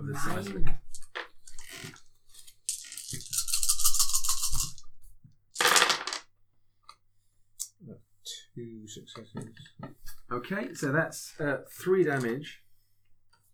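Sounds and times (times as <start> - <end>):
speech: 0.1 - 0.9, 8.6 - 12.6
dice rolling across a hard tabletop: 0.3 - 4.9, 5.5 - 6.3.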